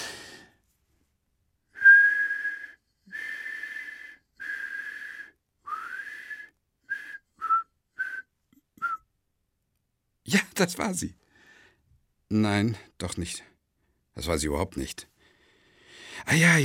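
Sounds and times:
person whistling a melody: 0:01.8 - 0:09.1
speech: 0:10.3 - 0:11.2, 0:12.3 - 0:13.5, 0:14.2 - 0:15.1, 0:16.3 - 0:16.6.

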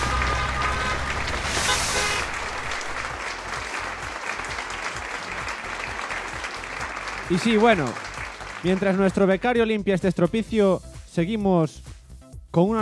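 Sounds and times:
audience applause at a comedic awards ceremony: 0:00.0 - 0:09.3
speech: 0:07.3 - 0:11.9, 0:12.5 - 0:12.7.

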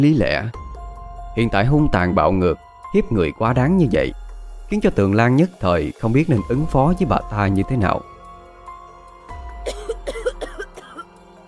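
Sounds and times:
speech: 0:00.0 - 0:00.6, 0:01.4 - 0:08.1
ill woman in bed having a violent coughing fit: 0:09.6 - 0:11.2.

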